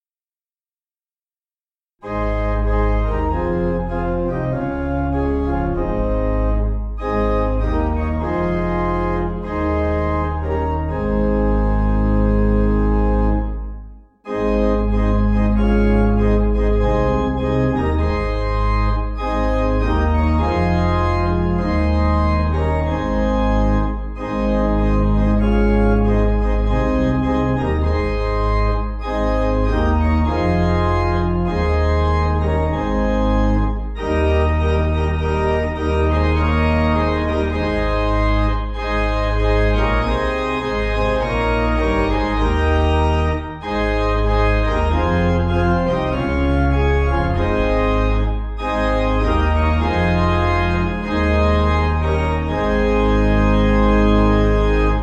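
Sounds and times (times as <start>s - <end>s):
piano: 2.0s - 55.0s
pipe organ: 2.0s - 55.0s.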